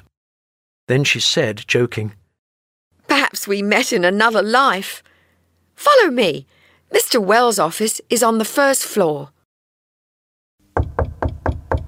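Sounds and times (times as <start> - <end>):
speech: 0.9 - 2.2, 3.1 - 5.1, 5.8 - 9.4
knocking on an office door: 10.8 - 11.8.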